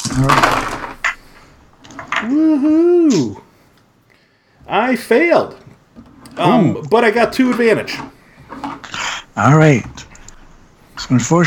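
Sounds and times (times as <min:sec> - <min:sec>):
seven dice tumbling across a hard surface during a tabletop game: 0:00.0 - 0:02.3
speech: 0:00.2 - 0:00.7, 0:02.2 - 0:03.4, 0:04.7 - 0:05.6, 0:06.4 - 0:08.2, 0:09.4 - 0:10.1, 0:11.1 - 0:11.4.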